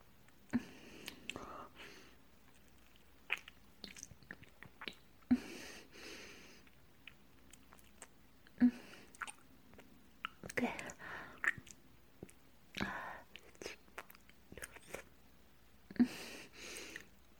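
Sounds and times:
person chewing food being fed by hand: 0.3s - 5.3s, 6.5s - 15.1s
faint breaths: 0.5s - 2.2s, 5.3s - 6.8s, 10.8s - 11.5s, 16.0s - 17.2s.

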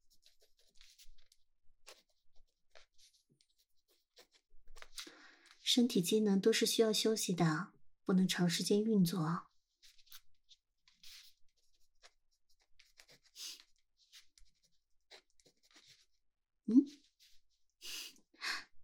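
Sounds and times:
pen scratching on paper during handwriting: 0.0s - 5.6s, 9.5s - 16.2s
speech: 5.7s - 9.5s.

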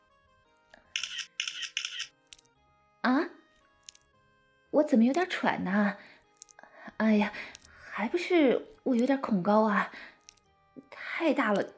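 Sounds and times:
phone camera shutter bursts taking a photo: 1.0s - 2.2s
speech: 4.8s - 6.1s, 7.0s - 10.1s, 10.8s - 11.7s.

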